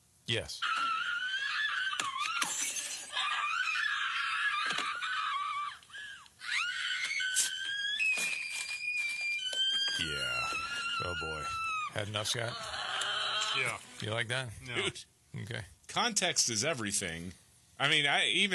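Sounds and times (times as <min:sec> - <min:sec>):
speech: 0:00.3 - 0:00.8, 0:11.0 - 0:12.8, 0:13.6 - 0:18.5
woman screaming in a movie: 0:00.6 - 0:11.9.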